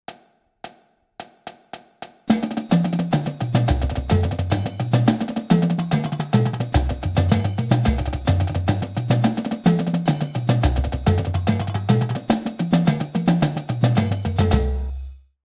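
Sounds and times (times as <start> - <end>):
drumline playing flam drag rudiments: 2.3 - 15.0.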